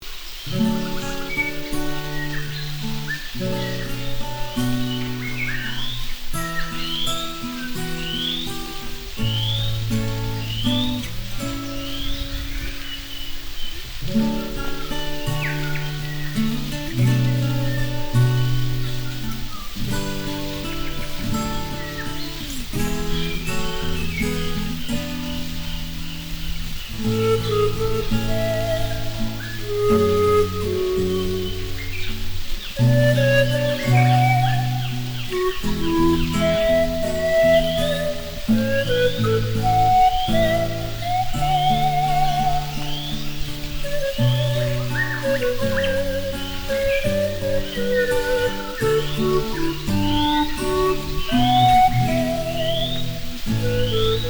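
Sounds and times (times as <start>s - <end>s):
birds: 0.0s - 54.2s
pan flute: 0.5s - 54.2s.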